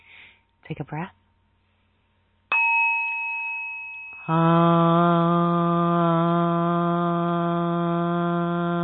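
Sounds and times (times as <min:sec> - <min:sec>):
speech: 0:00.7 - 0:01.2, 0:04.3 - 0:05.4
bright chime ringing: 0:02.5 - 0:04.3
group of voices humming on a single low pitch: 0:04.3 - 0:08.8.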